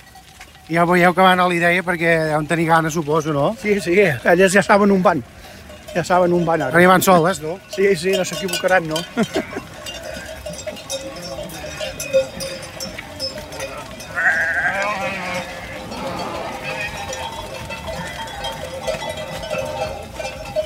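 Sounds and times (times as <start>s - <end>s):
bells clanking on a large flock of sheep moving past: 0.0s - 20.6s
speech: 0.7s - 5.4s, 6.0s - 9.7s
sheep bleating: 13.5s - 17.2s, 17.8s - 18.5s.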